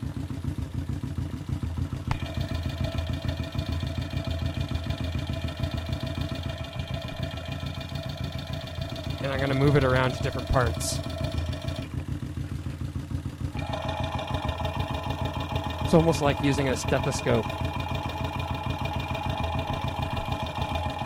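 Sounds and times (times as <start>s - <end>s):
idling motorcycle exhaust gases pulsing through a muffler via contact mic: 0.0s - 21.0s
speech: 9.3s - 11.1s, 15.9s - 17.7s.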